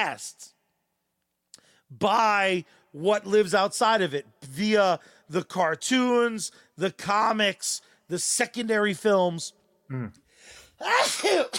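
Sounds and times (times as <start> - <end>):
speech: 0.0 - 0.6, 1.9 - 11.5
sneeze: 10.8 - 11.5.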